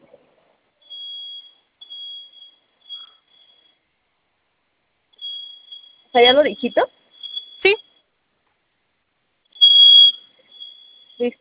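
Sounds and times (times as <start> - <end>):
home security panel fire alarm sounding during a test: 0.8 - 3.9, 5.1 - 8.1, 9.5 - 11.3
speech: 6.2 - 7.0.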